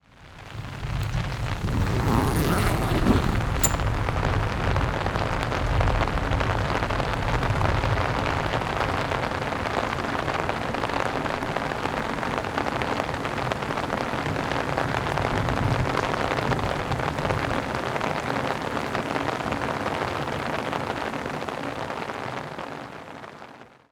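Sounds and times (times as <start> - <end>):
rain heard inside a tent: 0.1 - 23.9.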